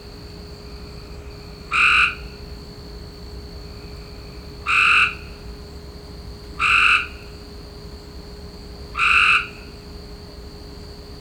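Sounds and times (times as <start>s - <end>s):
faint hum: 0.0s - 11.2s
Cope's gray treefrog Hyla chrysoscelis buzzy trills: 1.7s - 2.3s, 4.6s - 5.3s, 6.6s - 7.2s, 9.0s - 9.6s.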